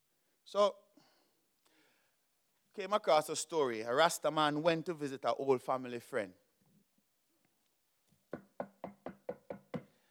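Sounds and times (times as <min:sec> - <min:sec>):
speech: 0:00.5 - 0:00.8, 0:02.8 - 0:06.4
sharp knocks on a wooden door: 0:08.3 - 0:09.9.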